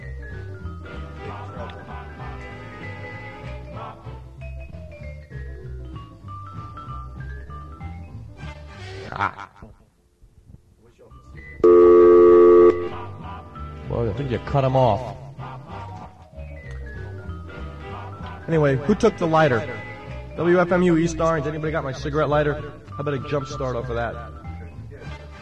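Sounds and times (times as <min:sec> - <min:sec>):
tonal music: 0:00.0 - 0:09.8, 0:10.8 - 0:25.4
speech: 0:09.1 - 0:09.6, 0:14.1 - 0:15.2, 0:18.5 - 0:19.8, 0:20.4 - 0:24.4
telephone keypad touch-tone beep: 0:11.6 - 0:13.0.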